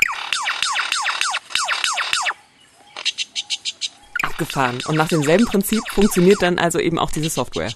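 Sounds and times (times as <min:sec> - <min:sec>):
lyrebird mimicking a lightsaber with buzzy electronic zaps and pulsing tones: 0:00.0 - 0:02.4, 0:03.0 - 0:06.6
speech: 0:04.4 - 0:07.7.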